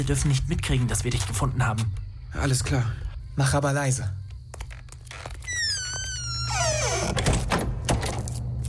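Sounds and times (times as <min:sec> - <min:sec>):
speech: 0:00.0 - 0:04.2
door hinges creaking: 0:04.8 - 0:08.2.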